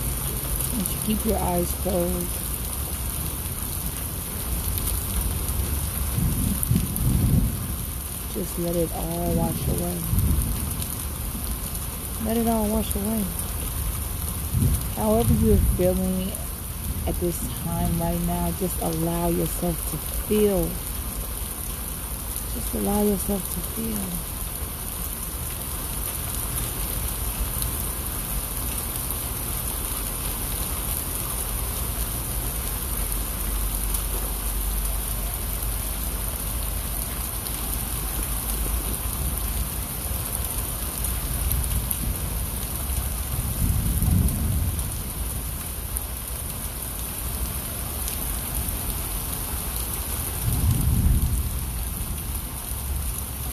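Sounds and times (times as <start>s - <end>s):
steady rainfall: 0.0s - 53.5s
speech: 0.8s - 2.5s, 8.4s - 10.4s, 12.2s - 13.4s, 14.6s - 16.4s, 17.0s - 20.9s, 22.6s - 24.3s
low rumbles of thunder: 5.7s - 8.0s, 10.0s - 11.6s, 14.4s - 15.8s, 43.2s - 45.5s, 50.4s - 53.0s.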